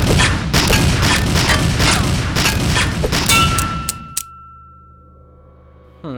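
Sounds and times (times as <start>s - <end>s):
rapid gunshots: 0.0s - 4.2s
bullets clanging off a metal shovel: 3.2s - 4.6s
sustained metallic ringing tone from a shovel: 3.3s - 6.1s.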